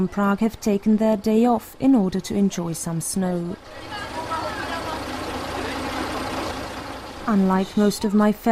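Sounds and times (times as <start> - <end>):
speech: 0.0 - 4.2, 7.3 - 8.5
large old Karosa bus engine running: 3.1 - 8.5.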